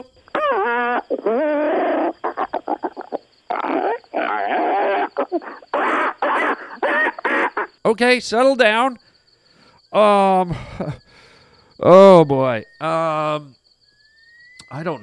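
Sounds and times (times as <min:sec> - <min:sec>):
speech: 0:00.0 - 0:02.1, 0:07.8 - 0:09.0, 0:09.9 - 0:11.0, 0:11.8 - 0:13.5, 0:14.8 - 0:15.0
person imitating monkey hoots and chattering calls: 0:00.0 - 0:07.9.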